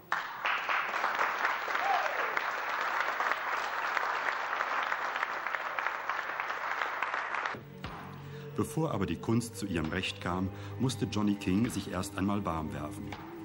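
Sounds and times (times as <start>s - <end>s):
sizable crowd applauding: 0.0s - 7.6s
speech: 8.6s - 13.3s.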